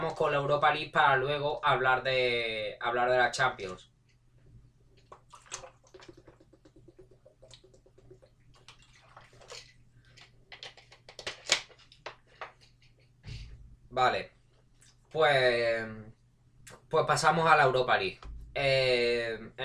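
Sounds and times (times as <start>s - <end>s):
low steady hum: 0.0s - 19.6s
speech: 0.1s - 3.9s, 13.9s - 14.4s, 15.1s - 16.1s, 16.9s - 19.6s
person drinking water with wet gulps and slurps: 4.9s - 10.4s.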